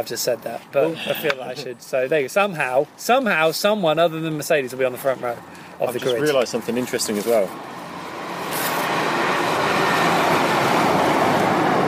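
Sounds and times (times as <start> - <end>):
speech: 0.0 - 7.8
train wheels and carriages rumbling past: 9.0 - 11.8.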